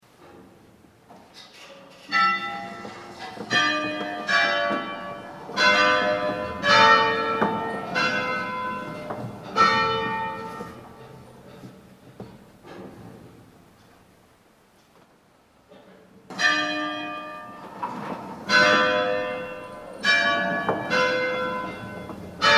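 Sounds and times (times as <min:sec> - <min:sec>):
bells of San Rocco: 0:01.9 - 0:11.7, 0:16.3 - 0:22.5.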